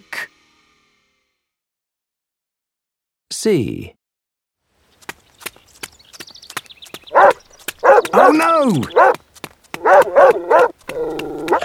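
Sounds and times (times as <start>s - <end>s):
speech: 3.4s - 4.0s, 8.1s - 9.3s, 9.9s - 11.6s
tapping step-like sounds: 5.0s - 11.6s
dog barking: 7.1s - 9.2s, 9.8s - 11.6s.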